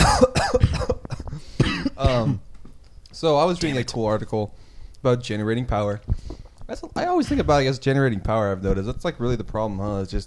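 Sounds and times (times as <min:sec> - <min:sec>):
person coughing in rough throaty bursts: 0:00.0 - 0:02.5, 0:03.6 - 0:03.9
speech: 0:03.2 - 0:10.2.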